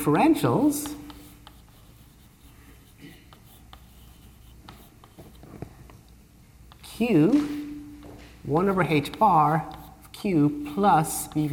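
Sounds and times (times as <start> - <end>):
speech: 0.0 - 1.0, 7.0 - 7.6, 8.4 - 11.5
quiet low hum: 0.0 - 11.5
equations being written by hand during a mathematics lecture: 0.7 - 5.7, 8.7 - 11.5.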